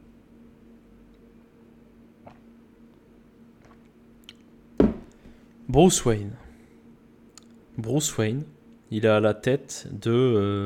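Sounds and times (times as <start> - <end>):
person sipping water from a cup: 2.2 - 2.6, 3.6 - 4.5
speech: 5.7 - 6.4, 7.8 - 10.6.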